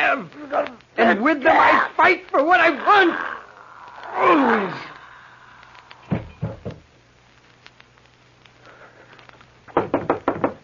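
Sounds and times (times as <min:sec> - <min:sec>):
faint low hum: 0:00.0 - 0:10.6
speech: 0:00.1 - 0:03.3, 0:04.2 - 0:04.9
knocking on a door: 0:06.1 - 0:06.8, 0:09.8 - 0:10.6.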